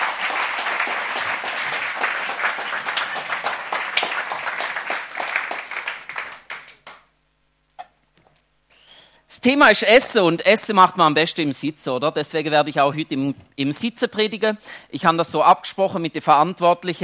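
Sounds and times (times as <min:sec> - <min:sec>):
audience applause: 0:00.0 - 0:07.0
speech: 0:09.4 - 0:17.0.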